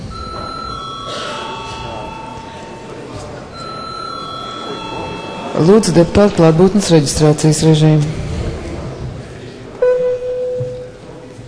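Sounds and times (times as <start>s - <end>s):
continuous electric bell ringing to call a break in a parliament session: 0.0s - 7.1s
faint murmur of chatter: 0.0s - 11.4s
speech: 5.6s - 8.2s.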